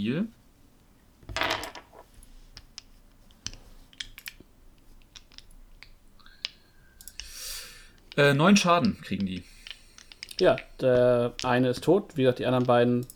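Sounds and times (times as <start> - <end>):
speech: 0.0 - 0.4, 8.2 - 9.5, 10.4 - 13.1
plastic dice tumbling: 1.3 - 12.8
small clicks and taps across the surface: 1.3 - 13.1.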